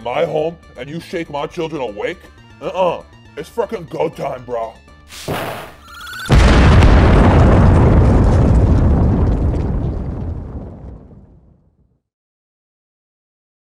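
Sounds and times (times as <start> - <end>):
speech: 0.0 - 5.7
cartoon explosion of a pine cone: 5.1 - 11.8.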